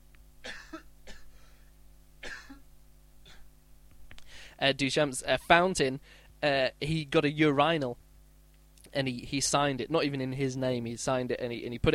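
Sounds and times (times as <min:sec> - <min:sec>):
hum: 0:00.0 - 0:11.9
person coughing: 0:00.4 - 0:02.6, 0:03.2 - 0:03.5
throat clearing: 0:03.2 - 0:03.5
speech: 0:04.6 - 0:08.0, 0:08.9 - 0:11.9.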